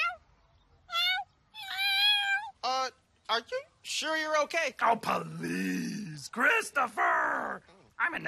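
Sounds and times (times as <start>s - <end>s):
house cat meowing: 0.0s - 0.2s, 0.9s - 2.6s
speech: 3.4s - 8.2s.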